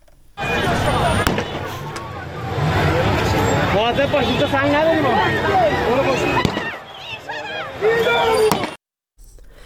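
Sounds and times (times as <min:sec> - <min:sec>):
gunshots fired at a protesting crowd: 0:00.0 - 0:02.0
large crowd shouting and chanting outdoors: 0:00.4 - 0:08.8.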